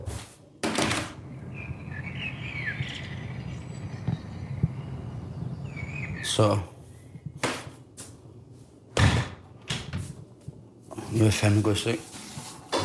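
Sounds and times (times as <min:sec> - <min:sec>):
steady low outdoor rumble: 0:01.1 - 0:11.0
birds chirping and singing outdoors: 0:01.2 - 0:07.4
speech: 0:06.4 - 0:06.7, 0:11.2 - 0:12.1.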